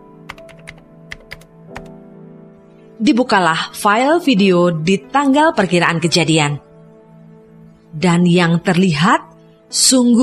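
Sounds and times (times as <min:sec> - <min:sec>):
computer keyboard clicks: 0:00.3 - 0:01.9
speech: 0:03.0 - 0:06.7, 0:08.0 - 0:10.2.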